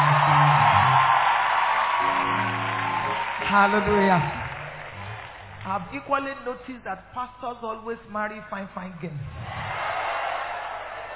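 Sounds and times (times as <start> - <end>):
audience clapping and cheering: 0.0 - 6.1, 9.4 - 11.1
speech: 3.5 - 4.4, 5.7 - 9.4.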